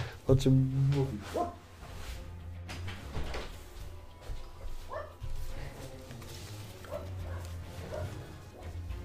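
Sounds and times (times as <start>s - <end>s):
speech: 0.3s - 1.6s
dogs barking outside: 1.3s - 1.7s, 4.8s - 5.3s, 6.8s - 8.9s.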